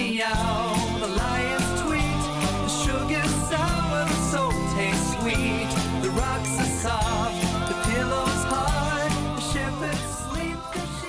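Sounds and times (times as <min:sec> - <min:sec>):
upbeat a cappella song with layered vocal harmonies: 0:00.0 - 0:11.0.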